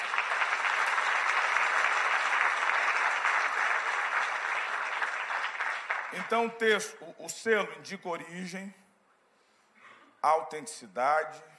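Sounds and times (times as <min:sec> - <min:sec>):
congregation applauding: 0:00.0 - 0:06.5
speech: 0:06.1 - 0:08.8, 0:10.2 - 0:11.5.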